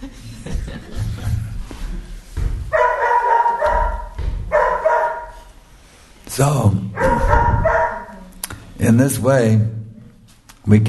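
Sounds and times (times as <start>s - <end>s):
laughter: 0.0s - 2.3s
dog barking and yapping: 2.7s - 5.6s, 7.0s - 8.3s
speech: 6.4s - 7.3s, 8.8s - 9.8s, 10.6s - 10.8s.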